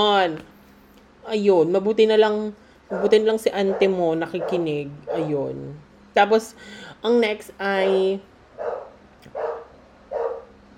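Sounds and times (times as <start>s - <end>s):
speech: 0.0s - 0.5s, 1.3s - 9.4s
faint dog barks: 2.9s - 5.4s, 8.6s - 10.5s.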